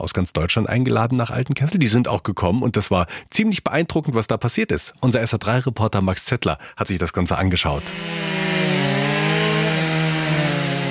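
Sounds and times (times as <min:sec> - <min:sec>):
speech: 0:00.0 - 0:08.7
chainsaws cutting wood blocks: 0:07.8 - 0:10.9.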